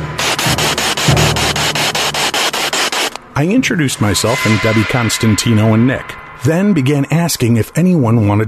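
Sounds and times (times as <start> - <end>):
loud steady spirit box static hiss: 0.0 - 4.2
speech: 3.4 - 8.4.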